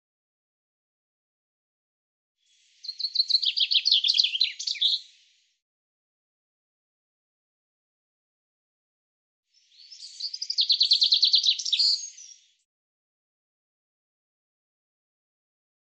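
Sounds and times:
common chaffinch descending trill: 0:02.4 - 0:05.5, 0:09.5 - 0:12.7.

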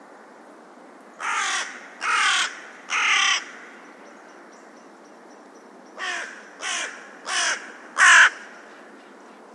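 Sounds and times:
bird giving harsh hoarse caws: 0:01.2 - 0:03.7, 0:06.0 - 0:08.6.

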